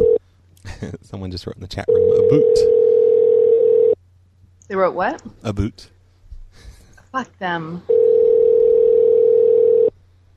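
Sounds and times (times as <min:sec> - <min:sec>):
telephone dial tone as a call is placed: 0:00.0 - 0:00.2, 0:02.0 - 0:04.0, 0:07.9 - 0:09.9
speech: 0:00.8 - 0:02.9, 0:04.7 - 0:05.9, 0:06.6 - 0:08.0.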